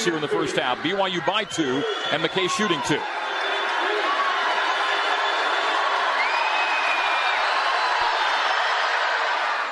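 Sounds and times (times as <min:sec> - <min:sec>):
speech: 0:00.0 - 0:03.4
basketball arena crowd roaring during free throws: 0:00.0 - 0:09.6.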